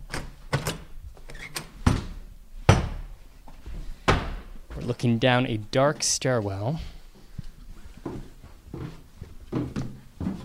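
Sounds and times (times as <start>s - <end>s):
lock being worked on a door in a hallway: 0.0s - 1.7s
knocks and thuds of a door being pulled open: 1.8s - 3.1s, 4.1s - 4.5s
speech: 4.8s - 6.9s.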